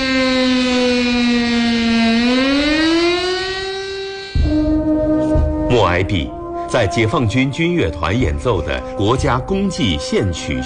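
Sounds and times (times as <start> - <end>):
chorus of car horns honking: 0.0 - 6.6
air-raid siren wailing: 0.0 - 10.6
speech: 5.9 - 10.6.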